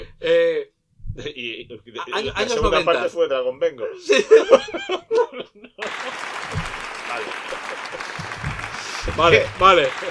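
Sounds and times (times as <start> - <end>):
speech: 1.2 - 10.0
laughter: 4.0 - 10.0
audience applause: 5.8 - 10.0.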